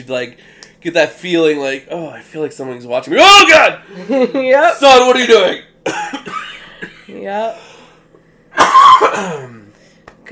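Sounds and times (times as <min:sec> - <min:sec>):
speech: 0:00.0 - 0:06.1, 0:07.1 - 0:07.7, 0:09.0 - 0:09.6
harsh cough from a person ill with COVID: 0:05.8 - 0:07.2, 0:08.5 - 0:09.7.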